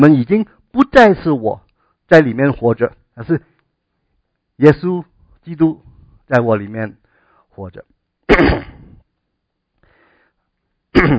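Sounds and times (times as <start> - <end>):
speech: 0.0 - 3.5, 4.6 - 7.0, 7.6 - 8.8, 10.9 - 11.1
coughing during a sermon: 8.3 - 9.0, 10.9 - 11.1.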